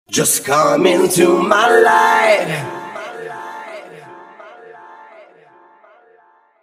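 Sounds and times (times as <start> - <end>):
backing vocals: 0.1 - 6.4.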